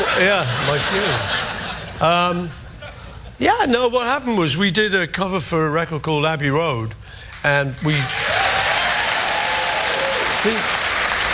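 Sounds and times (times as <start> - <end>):
laughter: 0.0 - 3.4
speech: 0.2 - 2.6, 3.4 - 8.3, 10.4 - 10.7
audience applause: 8.0 - 11.3.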